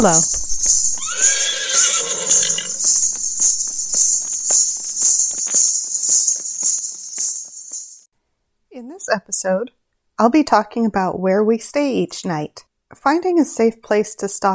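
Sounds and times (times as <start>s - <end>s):
speech: 0.0s - 0.4s, 9.2s - 14.5s
crickets or insects droning: 0.0s - 8.0s
horse whinnying: 1.0s - 2.9s.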